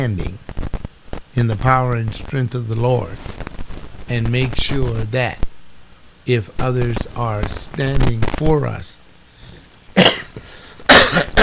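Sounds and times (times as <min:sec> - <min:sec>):
speech: 0:00.0 - 0:00.5, 0:01.4 - 0:03.4, 0:04.1 - 0:05.4, 0:06.3 - 0:09.0
harsh loud coughs: 0:09.9 - 0:11.4.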